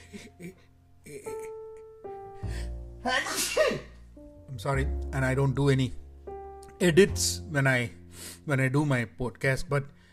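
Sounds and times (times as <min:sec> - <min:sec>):
person breathing: 0:02.3 - 0:03.0, 0:08.0 - 0:08.5, 0:09.9 - 0:10.1
person sneezing: 0:03.1 - 0:04.0
speech: 0:04.6 - 0:06.0, 0:06.8 - 0:10.0.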